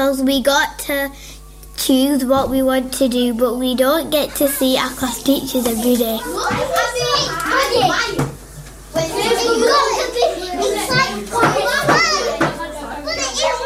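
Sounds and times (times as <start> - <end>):
speech: 0.0 - 8.3
children talking and playing at school: 0.0 - 13.6
children shouting and calling at school: 6.2 - 13.6.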